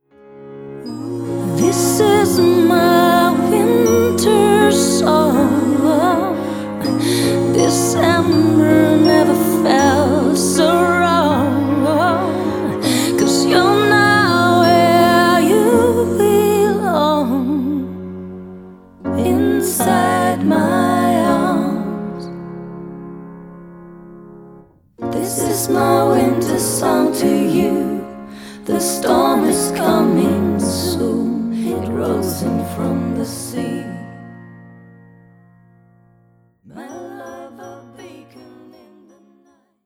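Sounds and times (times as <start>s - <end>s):
female voices singing a winter song: 0.8s - 18.1s, 19.1s - 22.4s, 25.0s - 34.3s, 36.7s - 39.6s.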